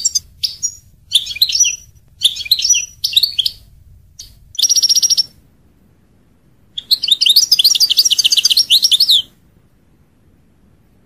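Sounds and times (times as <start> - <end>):
European goldfinch trilling and twittering: 0.0 - 3.6, 4.2 - 5.3, 6.8 - 9.3.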